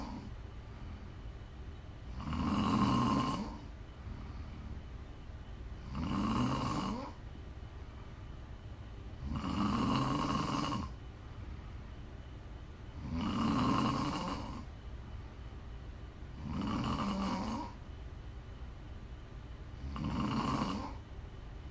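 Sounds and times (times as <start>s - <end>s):
person snoring with low rattling rasp: 0.0s - 0.3s, 2.1s - 4.8s, 5.8s - 7.2s, 9.2s - 11.0s, 13.0s - 14.7s, 16.4s - 17.8s, 19.8s - 21.0s
quiet hiss: 0.0s - 21.6s.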